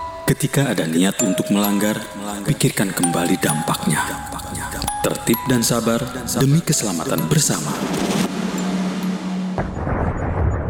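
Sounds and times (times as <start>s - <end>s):
speech: 0.3s - 8.3s
thunderclap from a lightning strike: 7.9s - 10.6s.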